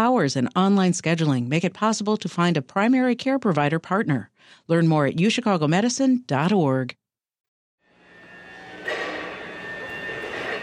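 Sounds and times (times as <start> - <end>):
speech: 0.0 - 7.0
industrial machinery droning in a train repair warehouse: 7.8 - 10.6.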